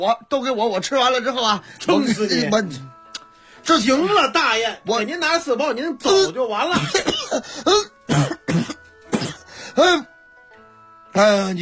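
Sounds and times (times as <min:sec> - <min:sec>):
speech: 0:00.0 - 0:03.0, 0:03.6 - 0:08.6, 0:09.8 - 0:10.1, 0:11.2 - 0:11.6
person choking and coughing after biting into a spicy chili steamed bun: 0:06.7 - 0:10.1
throat-clearing: 0:06.8 - 0:10.1.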